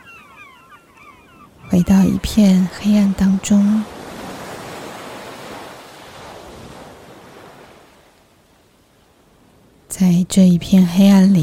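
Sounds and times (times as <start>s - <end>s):
ocean waves surging: 1.4s - 9.9s
speech: 1.8s - 3.9s, 10.3s - 11.4s.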